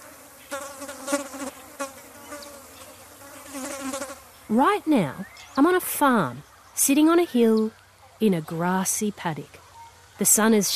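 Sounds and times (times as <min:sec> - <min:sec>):
flies buzzing on a farm in a grassy paddock on a hill: 0:00.0 - 0:05.8
speech: 0:04.5 - 0:09.6, 0:10.2 - 0:10.7.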